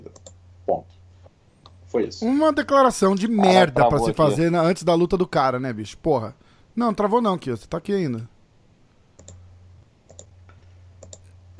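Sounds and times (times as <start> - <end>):
low electrical hum: 0.0 - 11.5
speech: 1.9 - 8.3
computer keyboard clicking: 9.2 - 9.4, 10.1 - 10.3, 11.0 - 11.5.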